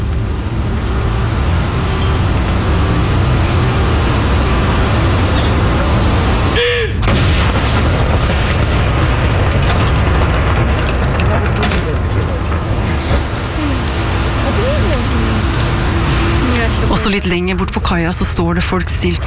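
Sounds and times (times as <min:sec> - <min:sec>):
outdoor noise: 0:00.0 - 0:19.2
cannon salute booming from fortress: 0:06.5 - 0:14.6
speech: 0:17.3 - 0:19.2.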